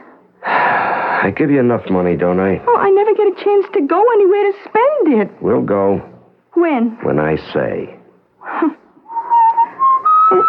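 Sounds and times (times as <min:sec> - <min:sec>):
speech: 0:01.2 - 0:08.8
person whistling a song: 0:09.1 - 0:10.4.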